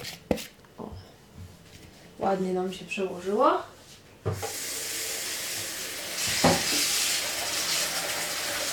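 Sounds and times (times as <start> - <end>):
speech: 2.2 - 3.7
seasoned chicken breast sizzling in a hot frying pan: 4.4 - 8.7.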